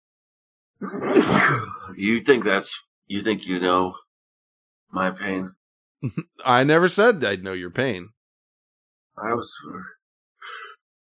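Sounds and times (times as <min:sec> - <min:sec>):
loud harsh breathy sneeze: 0:00.8 - 0:01.9
speech: 0:00.8 - 0:04.0, 0:04.9 - 0:08.2, 0:09.2 - 0:10.6.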